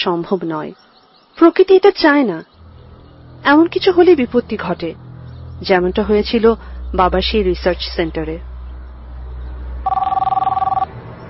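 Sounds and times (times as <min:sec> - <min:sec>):
speech: 0:00.0 - 0:02.5, 0:03.4 - 0:05.0, 0:05.6 - 0:08.5
telephone ringing: 0:09.8 - 0:10.9.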